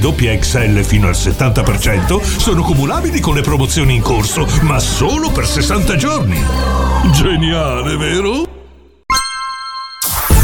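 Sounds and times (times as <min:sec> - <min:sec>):
speech: 0:00.0 - 0:08.5
phone message notification chime: 0:09.1 - 0:10.3.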